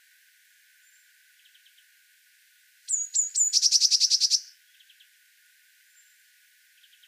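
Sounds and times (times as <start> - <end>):
Eurasian blue tit Cyanistes caeruleus churring call: 2.9 - 4.5.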